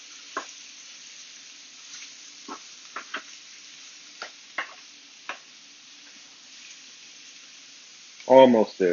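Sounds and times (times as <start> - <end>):
short ribs searing in a pan: 0.0 - 8.9
sharp pops and crackles of short ribs searing: 0.2 - 0.7, 2.0 - 8.3.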